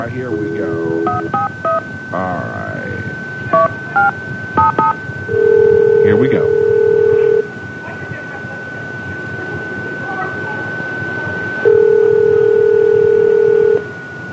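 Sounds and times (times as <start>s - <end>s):
speech: 0.0s - 1.4s
persistent high hum: 0.0s - 14.3s
telephone ringback tone: 0.3s - 1.8s, 3.6s - 7.5s, 11.4s - 14.3s.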